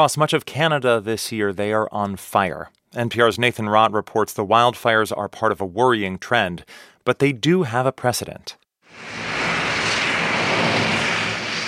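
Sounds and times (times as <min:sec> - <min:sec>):
speech: 0:00.0 - 0:09.4
firefighting scooper airplanes taking off from an airfield: 0:08.9 - 0:11.6.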